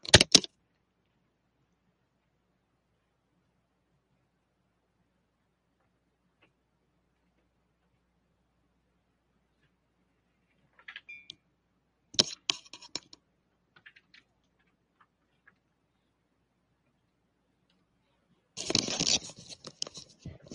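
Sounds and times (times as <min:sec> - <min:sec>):
clicks and clatters of someone fiddling with a troublesome computer keyboard and mouse: 0:00.0 - 0:00.5, 0:12.2 - 0:13.2, 0:13.8 - 0:15.6, 0:18.6 - 0:20.5.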